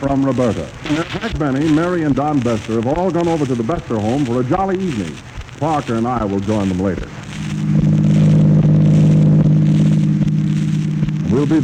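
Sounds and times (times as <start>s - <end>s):
speech: 0.0s - 7.2s, 11.4s - 11.6s
car engine rumbling as the vehicle pulls away: 7.1s - 11.6s.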